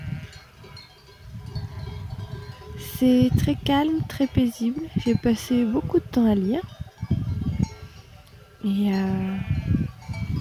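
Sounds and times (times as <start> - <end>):
flock of sheep bleating: 0.0 - 0.4, 9.2 - 9.9
bells clinking and jangling among sheep: 0.1 - 5.6, 6.4 - 10.3
speech: 3.0 - 6.8, 8.6 - 9.8.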